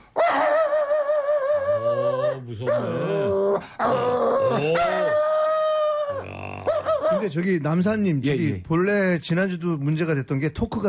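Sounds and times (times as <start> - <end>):
person imitating a dog barking at a burglar with howls and yelps: 0.2 - 7.4
speech: 2.5 - 5.3, 7.1 - 10.8.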